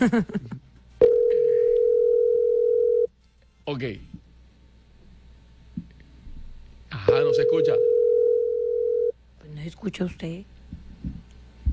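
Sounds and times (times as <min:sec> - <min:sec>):
speech: 0:00.0 - 0:00.6, 0:03.7 - 0:04.2, 0:07.1 - 0:08.0, 0:09.6 - 0:11.2
steady telephone line tone after a number is dialed: 0:01.0 - 0:03.1, 0:07.0 - 0:09.2.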